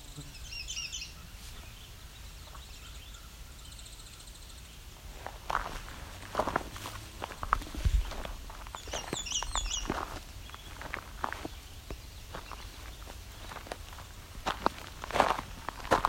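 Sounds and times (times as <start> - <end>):
American Redstart warbling song: 0.0 - 4.9, 7.9 - 14.2
footsteps crunching: 5.0 - 16.0.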